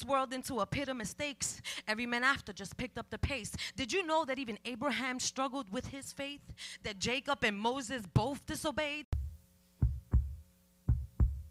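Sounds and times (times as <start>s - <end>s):
speech: 0.0s - 9.2s
heartbeat: 9.1s - 11.4s.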